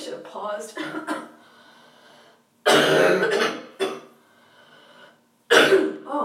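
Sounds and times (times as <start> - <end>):
person coughing hard and clearing phlegm from the throat: 0.8 - 1.3, 2.7 - 4.1, 5.5 - 6.0
quiet breathing: 1.3 - 2.5, 4.1 - 5.3.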